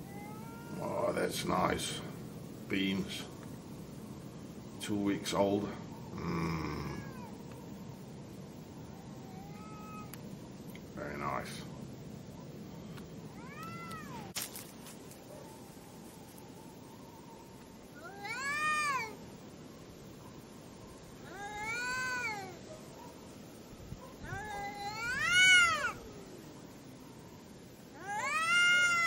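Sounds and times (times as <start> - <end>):
cats yowling and caterwauling in a fight: 0.0 - 1.2, 6.0 - 7.6, 8.8 - 10.2, 13.3 - 14.4, 17.9 - 19.2, 20.9 - 23.2, 24.0 - 26.8, 27.9 - 29.0
steady hiss: 0.0 - 29.0
speech: 0.8 - 2.1, 2.7 - 3.3, 4.8 - 6.8.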